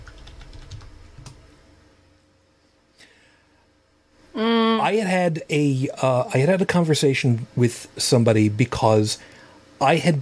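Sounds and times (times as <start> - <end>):
computer keyboard typing: 0.0 - 1.4
speech: 4.4 - 10.2.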